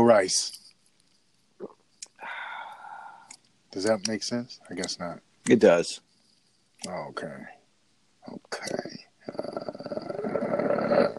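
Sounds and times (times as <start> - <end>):
speech: 0.0 - 0.6, 3.7 - 6.1, 6.8 - 7.6, 8.2 - 9.6
person growling with mouth imitating an animal: 9.2 - 11.1.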